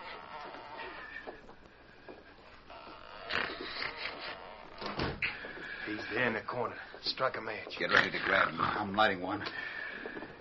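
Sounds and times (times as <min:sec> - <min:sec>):
cabin door opening and closing: 0:02.7 - 0:05.6
speech: 0:05.9 - 0:09.8.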